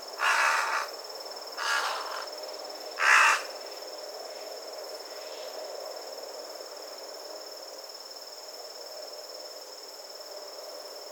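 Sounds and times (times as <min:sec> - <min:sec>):
carrion crow Corvus corone rasping caws: 0:00.2 - 0:01.0, 0:01.6 - 0:02.3, 0:03.0 - 0:03.6.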